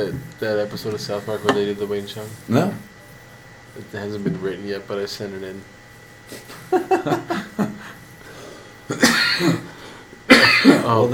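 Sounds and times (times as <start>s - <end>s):
speech: 0.0s - 2.9s, 3.8s - 7.4s, 8.9s - 9.6s, 10.9s - 11.1s
laughter: 6.3s - 8.0s
person coughing: 8.9s - 11.0s.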